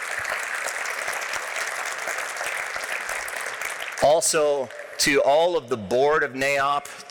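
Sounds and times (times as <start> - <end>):
room full of people clapping: 0.0 - 5.6
speech: 4.1 - 7.0.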